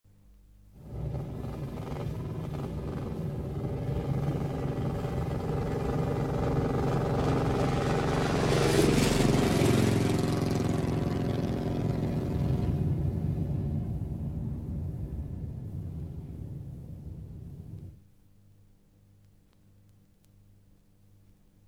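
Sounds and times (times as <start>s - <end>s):
motorcycle passing: 0.8s - 17.6s.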